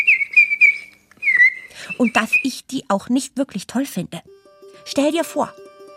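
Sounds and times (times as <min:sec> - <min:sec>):
bird-call imitation whistle blown in warbling chirps: 0:00.0 - 0:02.5
speech: 0:02.0 - 0:04.3, 0:04.9 - 0:05.6.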